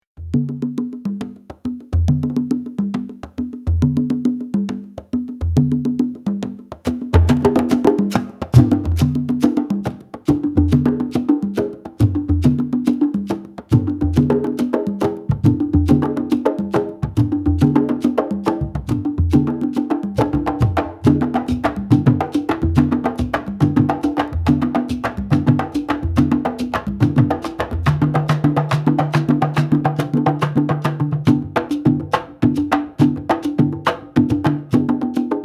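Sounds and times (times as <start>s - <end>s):
tribal beat on African percussion: 0.2s - 35.4s.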